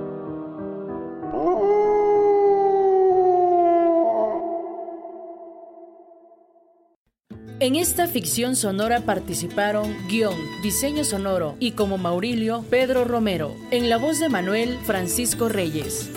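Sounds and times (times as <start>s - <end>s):
dog howling on a quiet night near Cerro Gordo San Luis Amatlán Oaxaca: 1.3s - 6.3s
speech: 7.6s - 16.1s.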